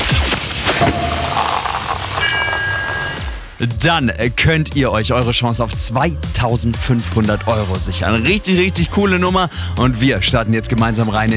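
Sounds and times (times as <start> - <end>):
sparkling wine cork popping: 0.8 - 3.5
bright ringing tones: 0.8 - 3.6
speech: 3.6 - 11.3.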